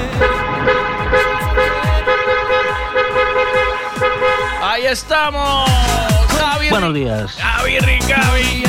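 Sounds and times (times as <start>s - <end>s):
car horn honking: 0.1s - 4.9s
speech: 4.9s - 8.6s.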